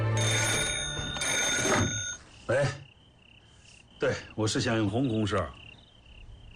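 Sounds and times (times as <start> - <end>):
desk telephone bell ringing on an office desk: 0.2 - 2.3
speech: 2.5 - 2.8, 4.0 - 5.7.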